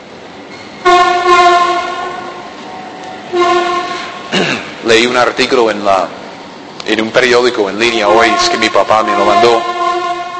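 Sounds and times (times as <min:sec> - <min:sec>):
metro train cars rumbling past: 0:00.0 - 0:10.3
metro train horn blast: 0:00.8 - 0:04.4, 0:07.9 - 0:10.3
speech: 0:04.9 - 0:06.2, 0:06.9 - 0:09.7.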